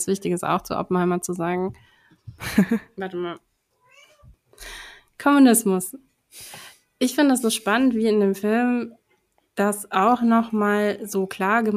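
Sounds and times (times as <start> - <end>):
speech: 0.0 - 3.5, 4.6 - 9.0, 9.6 - 11.7
laughter: 2.4 - 2.8
cat meowing: 3.8 - 4.3.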